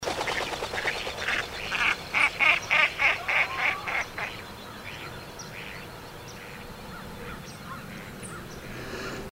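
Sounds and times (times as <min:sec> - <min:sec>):
black duck calling: 0:00.3 - 0:05.8.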